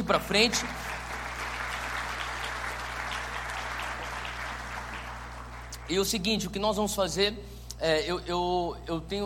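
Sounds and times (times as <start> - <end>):
crowd applauding: 0.0 - 5.9
speech: 0.1 - 0.8, 5.9 - 9.2.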